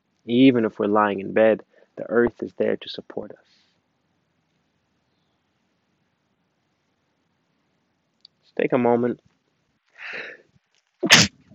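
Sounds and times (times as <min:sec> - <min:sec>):
speech: 0:00.2 - 0:03.6, 0:08.6 - 0:09.3, 0:11.0 - 0:11.3
loud sneeze: 0:11.0 - 0:11.5.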